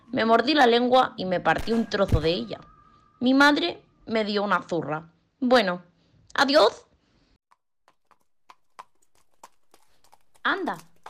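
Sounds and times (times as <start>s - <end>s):
speech: 0.1s - 6.8s, 10.4s - 10.9s
farmer's donkey hooves clip-clopping on a hard surface: 7.5s - 11.0s.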